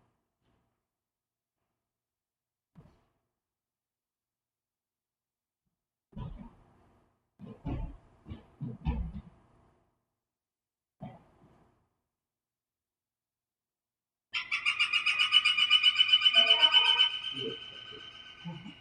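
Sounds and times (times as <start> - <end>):
northern flicker woodpecker calling: 14.4 - 18.7
faint voice: 16.3 - 18.7.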